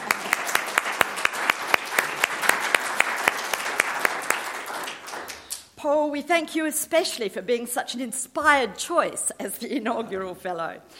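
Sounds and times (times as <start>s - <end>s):
audience applauding: 0.0s - 5.7s
one pair of hands clapping a quick even rhythm: 0.0s - 5.8s
speech: 6.1s - 10.9s.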